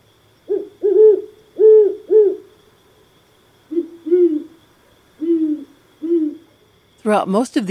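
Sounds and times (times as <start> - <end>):
great horned owl hooting: 0.4 - 2.7, 3.6 - 6.6
speech: 7.1 - 7.6.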